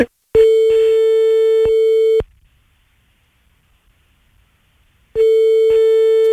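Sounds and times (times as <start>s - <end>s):
telephone line tone with long steady loud beeps while calling: 0.4s - 2.3s, 5.2s - 6.3s.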